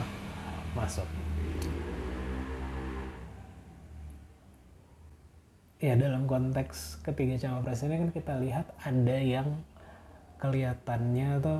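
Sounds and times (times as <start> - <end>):
motorcycle engine droning passing outside open window: 0.0 - 5.2
speech: 0.8 - 1.8, 5.8 - 9.7, 10.4 - 11.5.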